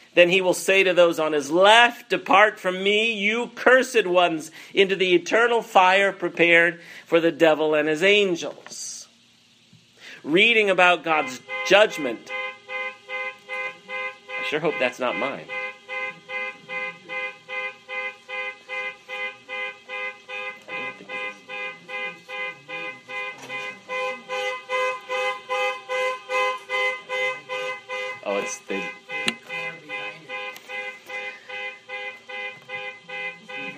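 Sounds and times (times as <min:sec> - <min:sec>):
speech: 0:00.2 - 0:09.0, 0:10.2 - 0:12.4, 0:14.5 - 0:15.6
car horn honking outside the window: 0:10.3 - 0:33.7.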